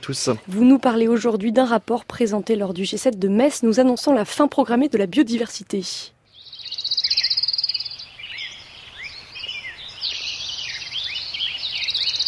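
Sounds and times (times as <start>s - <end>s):
speech: 0.0s - 6.2s
birds chirping and warbling with rapid trills: 6.2s - 12.2s.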